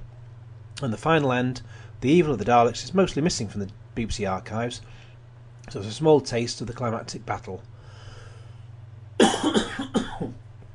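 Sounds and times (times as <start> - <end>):
steady low electrical hum: 0.0 - 10.7
speech: 0.8 - 5.0, 5.6 - 7.7
loud harsh cough: 9.2 - 10.4.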